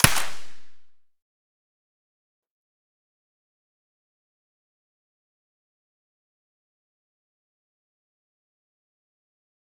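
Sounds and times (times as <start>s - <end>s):
distant SVD rifle shot with silencer: 0.0s - 1.0s.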